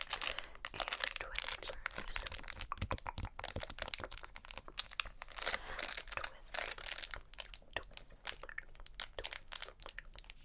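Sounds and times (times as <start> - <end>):
candy wrappers crinkling and rustling: 0.0 - 10.4.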